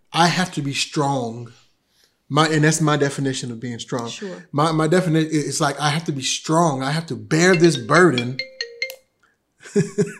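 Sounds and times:
speech: 0:00.2 - 0:01.6, 0:02.3 - 0:08.5, 0:09.6 - 0:10.1
bright repeating melodic chime: 0:07.4 - 0:09.1
cell phone ringtone: 0:07.5 - 0:09.2.

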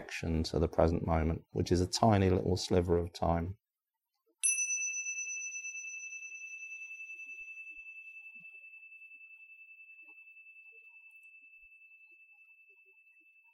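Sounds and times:
speech: 0:00.1 - 0:03.6
meditation bell struck and ringing: 0:04.4 - 0:13.5.

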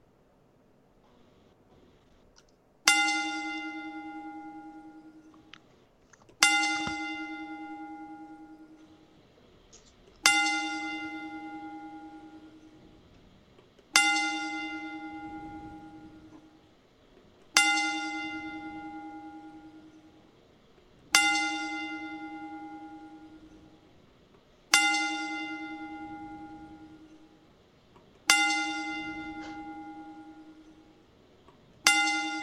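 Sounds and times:
deep bell tolling: 0:02.9 - 0:05.4, 0:06.4 - 0:09.1, 0:10.2 - 0:13.1, 0:13.9 - 0:16.6, 0:17.5 - 0:20.3, 0:21.1 - 0:23.9, 0:24.7 - 0:27.5, 0:28.3 - 0:31.1, 0:31.8 - 0:32.4.

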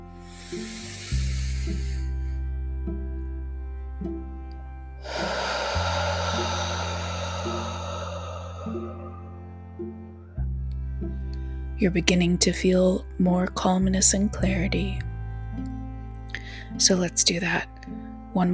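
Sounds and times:
soft, sustained low music: 0:00.0 - 0:18.5
deep breath in through the nose during a guided breathing exercise: 0:00.2 - 0:02.4, 0:05.0 - 0:09.6
long exhale during a guided breathing exercise: 0:00.2 - 0:02.4, 0:05.0 - 0:09.7
speech: 0:11.8 - 0:15.1, 0:16.8 - 0:18.5.

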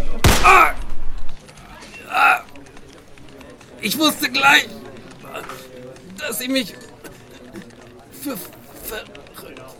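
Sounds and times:
gunshot: 0:00.0 - 0:01.1
speech: 0:03.8 - 0:04.8, 0:06.3 - 0:06.8, 0:08.2 - 0:09.6.

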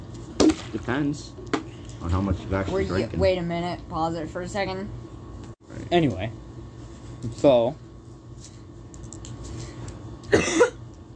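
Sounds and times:
speech: 0:00.7 - 0:05.0, 0:05.9 - 0:06.4, 0:07.2 - 0:07.8
person with a bad cough coughing: 0:10.3 - 0:10.8.

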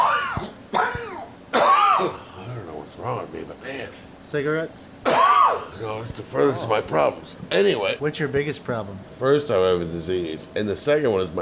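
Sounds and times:
person clearing throat: 0:00.0 - 0:02.6, 0:05.0 - 0:05.8
person coughing: 0:00.0 - 0:02.6, 0:05.0 - 0:05.8
speech: 0:03.0 - 0:11.3.

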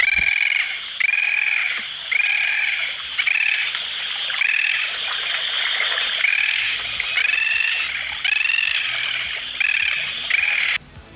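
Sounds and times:
bird calling: 0:00.0 - 0:10.8.

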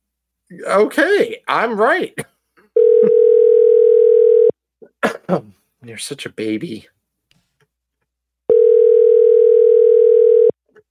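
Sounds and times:
speech: 0:00.5 - 0:02.3, 0:05.0 - 0:07.0
telephone dial tone of outgoing call: 0:02.8 - 0:04.5, 0:08.5 - 0:10.6.

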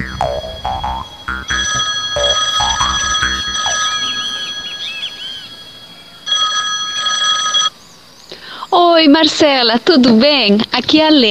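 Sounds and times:
telephone ringing: 0:00.3 - 0:07.7
speech: 0:09.2 - 0:11.2.

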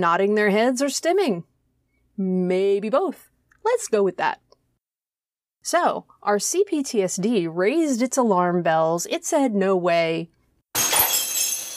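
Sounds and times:
speech: 0:00.0 - 0:01.5, 0:02.2 - 0:04.4, 0:05.6 - 0:10.9
glass shattering: 0:10.8 - 0:11.7.

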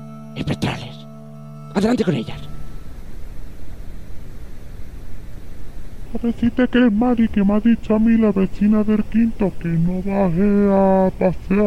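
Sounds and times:
speech: 0:00.4 - 0:00.8, 0:01.8 - 0:02.5, 0:06.1 - 0:11.6
static hiss in a psychophony recording: 0:01.8 - 0:11.6.

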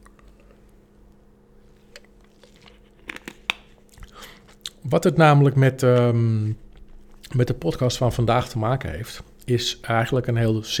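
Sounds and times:
person sipping a drink: 0:01.7 - 0:04.8
speech: 0:04.8 - 0:06.6, 0:07.3 - 0:10.7.

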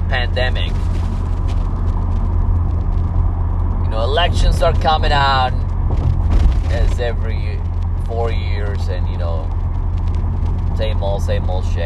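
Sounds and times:
car being driven on early morning road with road noise: 0:00.0 - 0:11.8
speech: 0:04.2 - 0:06.0, 0:06.7 - 0:07.5, 0:08.1 - 0:09.6, 0:10.8 - 0:11.8.

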